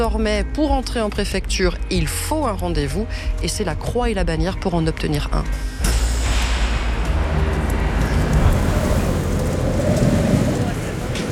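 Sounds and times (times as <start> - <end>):
speech: 0.0 - 5.8
strong wind buffeting the microphone outdoors: 6.3 - 11.2.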